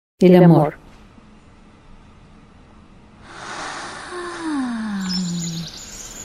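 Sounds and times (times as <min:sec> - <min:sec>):
speech: 0:00.2 - 0:00.8
bird chirping and warbling: 0:03.5 - 0:06.2.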